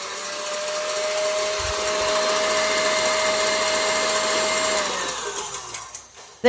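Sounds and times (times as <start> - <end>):
electric stand mixer with whisk attachment whipping cream: 0.0 - 6.2.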